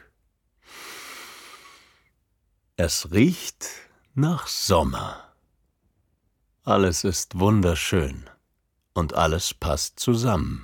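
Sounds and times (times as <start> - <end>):
deep breath drawn in outdoors on a summer day: 0.6 - 2.1
speech: 2.8 - 5.2, 6.6 - 8.4, 9.0 - 10.6.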